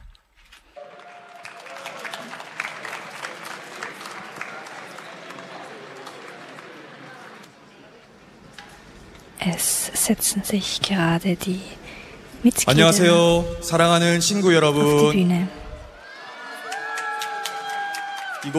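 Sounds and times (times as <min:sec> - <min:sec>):
large audience applause: 0:00.8 - 0:07.6, 0:16.0 - 0:18.5
speech: 0:09.4 - 0:11.8, 0:12.4 - 0:15.6.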